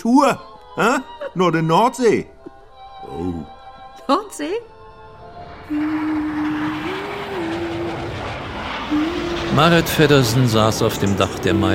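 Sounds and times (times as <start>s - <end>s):
speech: 0.0s - 2.3s, 3.1s - 4.7s, 5.7s - 6.4s, 9.6s - 11.7s
Starfighter military jet fighter roaring overhead in the sky: 4.7s - 11.7s.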